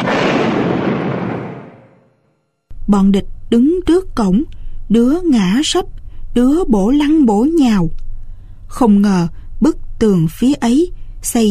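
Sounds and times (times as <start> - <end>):
mine exploding beside a wall corner next to a school: 0.0 - 2.2
speech: 2.9 - 8.0, 8.7 - 11.4.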